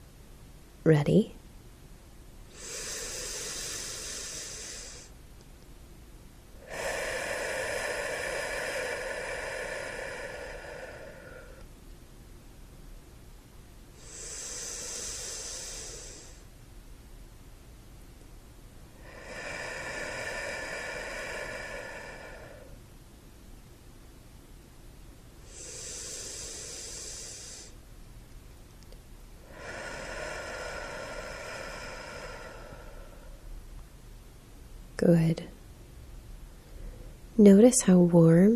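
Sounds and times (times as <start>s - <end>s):
speech: 0.8s - 1.4s, 35.1s - 35.5s, 37.4s - 38.5s
slow deep human breathing: 2.5s - 5.2s, 6.6s - 11.7s, 13.9s - 16.6s, 18.9s - 22.9s, 25.4s - 27.8s, 29.4s - 33.8s, 36.5s - 37.4s.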